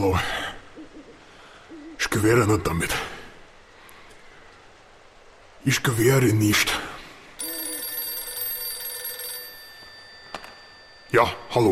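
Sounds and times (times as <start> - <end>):
speech: 2.2 - 3.2, 5.6 - 6.8, 11.1 - 11.6
telephone bell ringing: 7.4 - 11.5.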